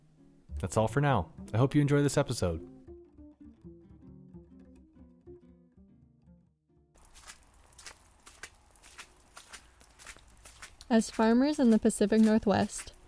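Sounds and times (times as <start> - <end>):
tonal music: 0.0 - 6.9
speech: 0.6 - 2.7, 10.9 - 13.0
boot footsteps squelching through wet mud: 7.0 - 13.0.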